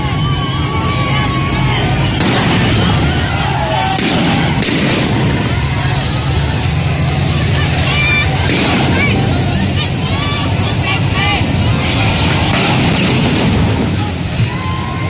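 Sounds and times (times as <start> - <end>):
loud constant outdoor din of a crowd at a street protest: 0.0 - 15.0
firecracker bangs at a street protest: 2.1 - 6.0, 8.4 - 9.5, 11.9 - 14.3.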